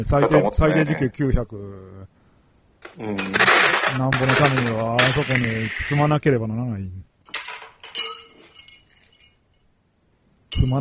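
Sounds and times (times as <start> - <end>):
speech: 0.0 - 2.1, 2.9 - 7.1, 10.5 - 10.7
ice cubes clinking against a glass: 3.2 - 5.9, 7.4 - 9.4.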